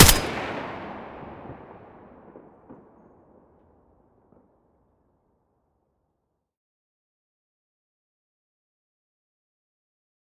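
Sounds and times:
M4A1 rifle muzzle blast: 0.0 - 1.0.

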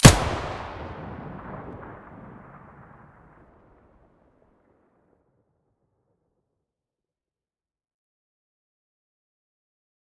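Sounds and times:
Vihr weapon muzzle blast: 0.0 - 2.0.

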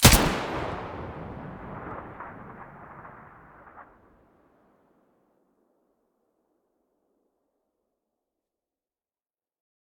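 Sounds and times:
AUG rifle gunshot: 0.0 - 4.1.

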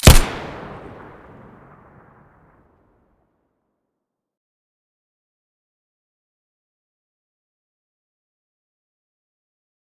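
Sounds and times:
pistol muzzle blast: 0.0 - 1.5.

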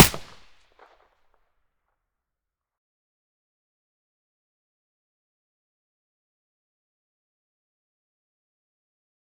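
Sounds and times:
gunshot through a silencer: 0.0 - 0.5.

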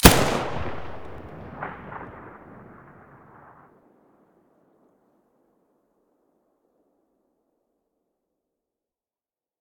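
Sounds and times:
SA80 rifle muzzle gunshot: 0.0 - 3.7.

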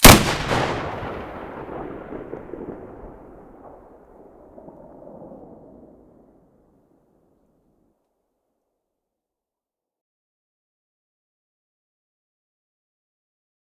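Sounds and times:
SV98 sniper rifle muzzle shot: 0.0 - 2.8.

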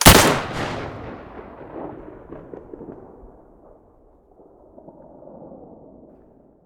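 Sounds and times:
Mosin rifle muzzle blast: 0.0 - 3.8.

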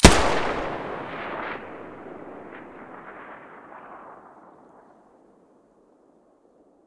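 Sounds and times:
UMP45 gun muzzle blast: 0.0 - 3.1.

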